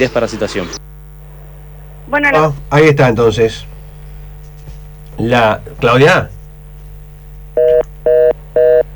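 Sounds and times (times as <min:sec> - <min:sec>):
speech: 0:00.0 - 0:00.8, 0:02.1 - 0:03.7, 0:05.2 - 0:06.4
faint hum: 0:00.0 - 0:08.9
telephone line beeps after a dropped call: 0:07.6 - 0:08.9.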